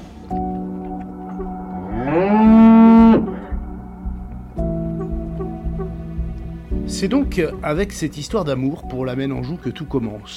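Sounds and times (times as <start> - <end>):
cow bellowing a drawn-out moo: 1.7 - 3.6
speech: 7.0 - 10.3.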